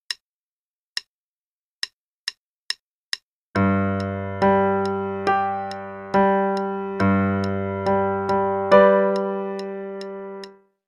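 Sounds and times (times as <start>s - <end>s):
octave warm-up: 3.6s - 10.6s.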